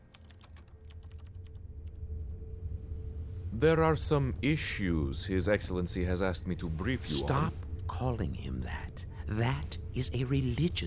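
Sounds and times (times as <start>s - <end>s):
rapid irregular keystrokes on a computer keyboard: 0.0s - 1.6s
steady low hum: 0.7s - 10.8s
speech: 3.6s - 10.8s.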